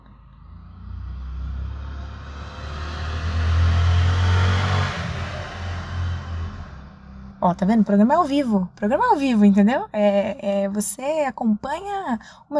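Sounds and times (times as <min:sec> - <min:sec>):
low rumbling drone: 0:00.0 - 0:10.5
motorcycle roaring past outside: 0:00.4 - 0:07.5
speech: 0:07.4 - 0:12.5.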